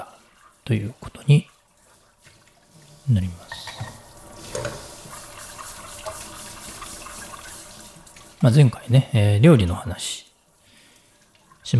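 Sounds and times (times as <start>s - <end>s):
running tap water splashing into a sink while washing dishes: 0.0s - 11.7s
speech: 0.7s - 1.5s, 3.1s - 3.7s, 8.4s - 10.2s
crockery clinking and clattering: 3.5s - 4.9s.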